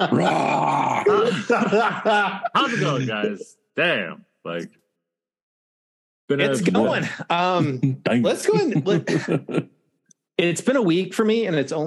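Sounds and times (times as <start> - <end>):
speech: 0.0 - 0.6, 1.3 - 4.8, 6.3 - 9.8, 10.4 - 11.8
person growling like a lion: 0.0 - 1.5
laughter: 1.0 - 3.5, 6.5 - 9.7.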